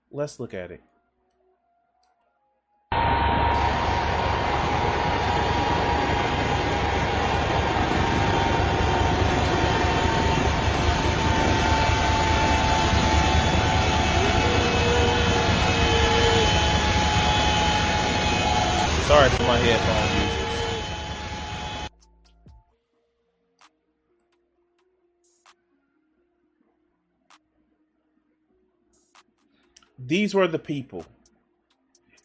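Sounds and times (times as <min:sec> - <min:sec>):
speech: 0:00.1 - 0:00.9, 0:19.3 - 0:20.3, 0:30.1 - 0:31.2
airplane engine roar on the runway before takeoff: 0:02.9 - 0:21.9.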